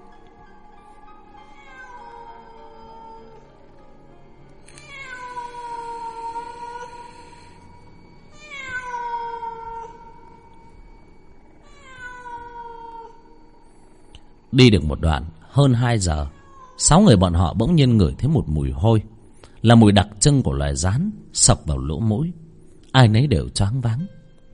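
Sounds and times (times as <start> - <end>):
stray cat yowling: 1.4 - 3.5, 4.7 - 7.7, 8.3 - 10.4, 11.6 - 13.4, 16.2 - 16.9
speech: 14.6 - 24.2.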